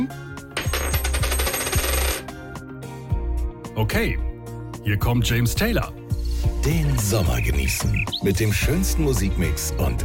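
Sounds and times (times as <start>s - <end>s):
tossed coin landing and bouncing with a metallic ring: 0.6s - 2.3s
speech: 3.8s - 6.0s, 6.6s - 10.0s.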